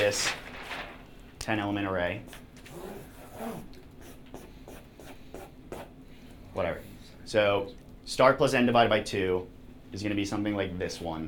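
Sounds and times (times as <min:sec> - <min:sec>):
low steady hum: 0:00.0 - 0:11.2
speech: 0:00.1 - 0:00.4, 0:01.5 - 0:03.8, 0:06.6 - 0:11.2
scratchy writing strokes drawing a diagram by hand: 0:04.0 - 0:06.0.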